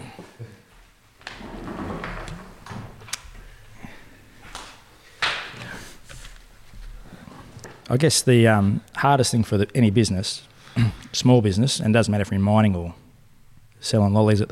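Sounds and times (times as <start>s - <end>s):
shuffling: 0.0s - 8.9s
door shutting: 1.2s - 3.8s
speech: 7.9s - 13.0s, 13.8s - 14.5s.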